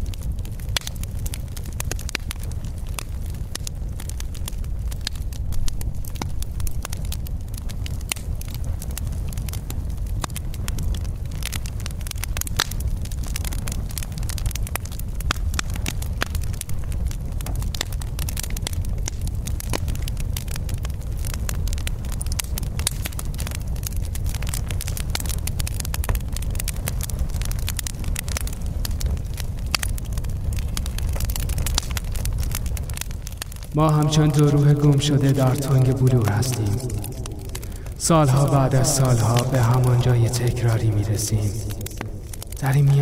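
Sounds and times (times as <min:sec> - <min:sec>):
fire burning with crackles and pops: 0:00.0 - 0:43.0
speech: 0:33.8 - 0:36.9, 0:38.1 - 0:41.7, 0:42.6 - 0:43.0.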